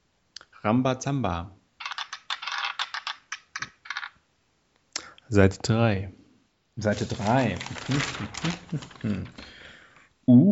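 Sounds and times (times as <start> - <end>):
speech: 0.6 - 1.6, 5.3 - 6.2, 6.8 - 9.6
dice rattling and clattering: 1.8 - 4.2, 6.9 - 9.7
laughter: 8.5 - 9.4.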